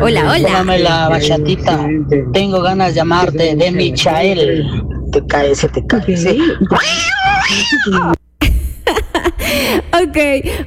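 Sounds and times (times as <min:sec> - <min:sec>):
speech: 0:00.0 - 0:08.2, 0:09.6 - 0:10.6
cat meowing in drawn-out wavering cries: 0:06.7 - 0:08.2.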